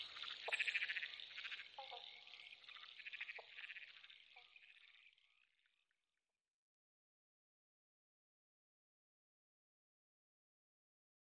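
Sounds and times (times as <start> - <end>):
frogs calling with rapid high pulsed notes: 0.0 - 5.0.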